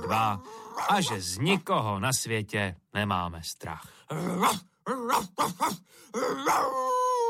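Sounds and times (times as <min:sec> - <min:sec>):
dog howling yelp: 0:00.0 - 0:01.2, 0:04.4 - 0:07.2
speech: 0:00.1 - 0:07.0
dog barking: 0:04.4 - 0:05.8.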